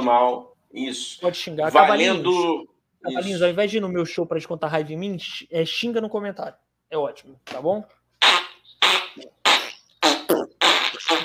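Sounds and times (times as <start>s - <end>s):
speech: 0.0s - 9.4s
loud fart sounds: 8.2s - 11.2s.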